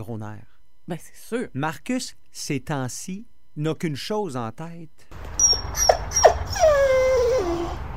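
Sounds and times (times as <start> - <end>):
speech: 0.0 - 6.3
dog whining: 5.4 - 7.8.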